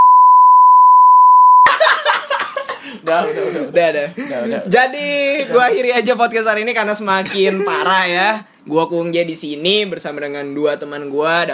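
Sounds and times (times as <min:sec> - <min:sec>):
high-pitched censor bleep: 0:00.0 - 0:01.7
laughter: 0:01.6 - 0:05.9, 0:07.2 - 0:08.0
speech: 0:03.0 - 0:11.5.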